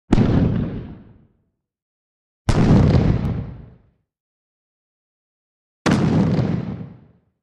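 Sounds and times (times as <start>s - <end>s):
grenade explosion: 0.1s - 1.3s, 2.5s - 3.8s, 5.9s - 7.2s.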